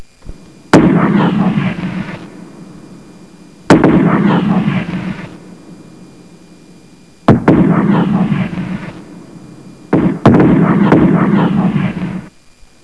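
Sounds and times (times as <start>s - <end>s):
artillery: 0.0s - 12.4s.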